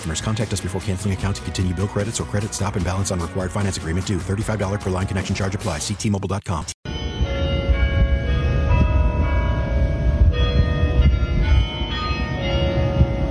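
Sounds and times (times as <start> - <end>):
speech: 0.0 - 6.8
university bell tower bells in Michigan playing a Jewish prayer melody: 6.9 - 13.2.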